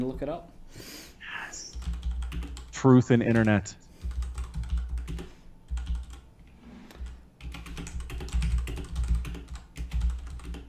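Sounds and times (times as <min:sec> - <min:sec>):
speech: 0:00.0 - 0:01.0, 0:02.8 - 0:03.8
typing on a computer keyboard: 0:01.7 - 0:02.7, 0:03.3 - 0:06.3, 0:06.9 - 0:10.6.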